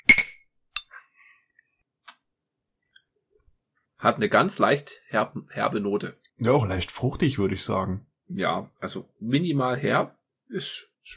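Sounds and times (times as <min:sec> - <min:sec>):
glasses clinking in a toast: 0:00.0 - 0:01.0
speech: 0:04.0 - 0:11.1.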